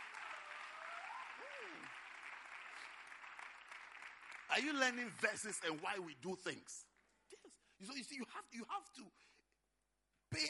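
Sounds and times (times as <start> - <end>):
audience clapping for a group of lay pastors: 0.0 - 8.2
speech: 4.5 - 6.9, 7.8 - 9.4.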